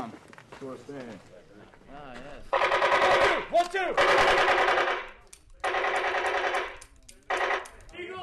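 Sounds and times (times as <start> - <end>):
speech: 0.6 - 5.1
automatic gunfire during room-clearing training exercise: 2.5 - 7.8.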